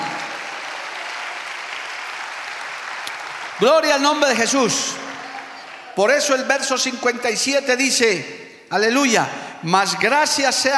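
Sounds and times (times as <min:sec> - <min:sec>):
congregation clapping in dense applause: 0:00.0 - 0:06.6
speech: 0:03.6 - 0:05.0, 0:06.0 - 0:10.7.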